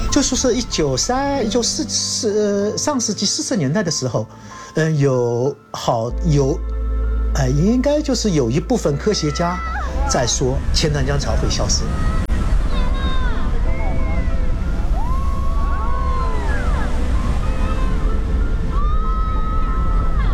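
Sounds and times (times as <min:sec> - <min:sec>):
tidal bore rushing up the 2.5-kilometre-wide Qiantang River: 0:00.0 - 0:03.1, 0:08.9 - 0:20.3
speech: 0:00.2 - 0:06.8, 0:07.4 - 0:12.2.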